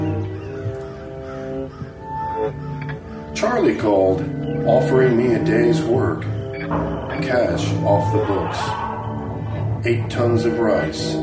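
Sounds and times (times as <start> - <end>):
flock of red-winged blackbirds calling: 0.0 - 11.2
speech: 3.4 - 8.8, 9.8 - 11.2.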